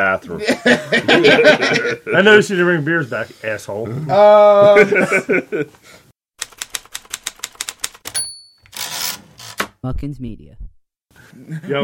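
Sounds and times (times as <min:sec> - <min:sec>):
speech: 0:00.0 - 0:06.0, 0:09.8 - 0:10.6, 0:11.3 - 0:11.8
laughter: 0:00.4 - 0:02.2, 0:04.2 - 0:05.8, 0:11.4 - 0:11.8
typewriter keys clacking: 0:06.4 - 0:09.7
typewriter carriage bell ding: 0:08.1 - 0:09.6.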